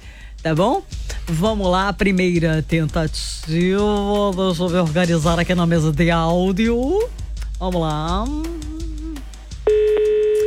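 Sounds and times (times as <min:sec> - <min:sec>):
speech: 0:00.4 - 0:08.8
telephone ring tone on an outgoing call: 0:09.7 - 0:10.4.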